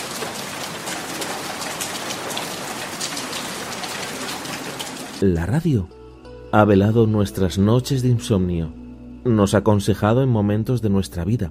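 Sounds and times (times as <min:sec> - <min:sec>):
steady rain falling on a surface: 0:00.0 - 0:05.2
speech: 0:05.2 - 0:11.4.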